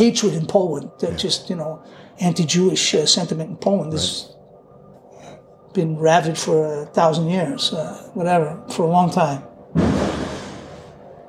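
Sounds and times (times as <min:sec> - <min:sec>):
speech: 0:00.0 - 0:04.4, 0:05.8 - 0:10.1
heavy thud of something dropped: 0:09.8 - 0:10.8.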